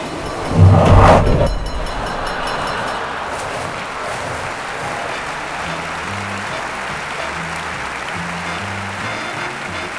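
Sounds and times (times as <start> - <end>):
train passing by: 0.0 - 7.5.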